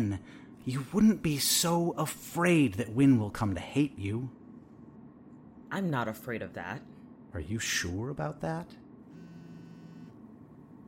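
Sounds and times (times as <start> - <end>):
speech: 0.0 - 4.4, 5.7 - 8.8
mobile phone vibrating with an incoming call: 9.1 - 10.2.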